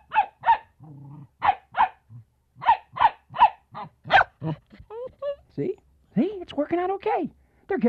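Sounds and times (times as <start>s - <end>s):
puppy yipping: 0.0s - 0.7s, 1.4s - 2.0s, 2.6s - 5.4s
dogs barking: 0.0s - 0.8s, 1.4s - 4.6s
dog growling: 0.8s - 1.4s, 2.0s - 2.3s, 3.8s - 5.1s
speech: 5.6s - 5.8s, 6.8s - 7.8s.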